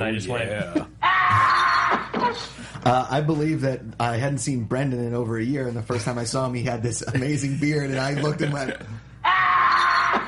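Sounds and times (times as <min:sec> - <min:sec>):
speech: 0:00.0 - 0:01.6, 0:02.3 - 0:09.1
man screaming as he is being chopped: 0:09.2 - 0:10.2.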